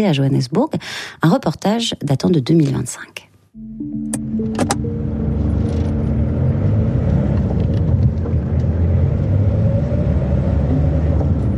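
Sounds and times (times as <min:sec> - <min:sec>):
speech: 0:00.0 - 0:04.9
car engine rumble inside a car driven in South Africa: 0:04.2 - 0:11.5.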